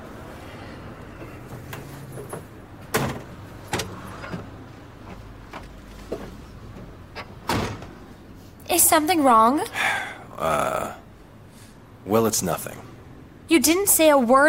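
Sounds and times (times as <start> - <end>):
car door clicking open and thudding shut: 1.3 - 8.0
sharp car door latch knocks and bumps: 1.6 - 8.0
speech: 8.8 - 11.0, 12.1 - 12.9, 13.5 - 14.4.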